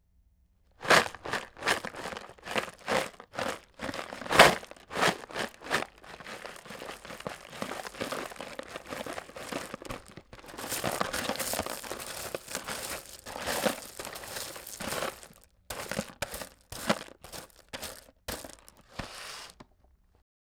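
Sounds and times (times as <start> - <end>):
rocks rattling in a box: 0.8 - 19.0.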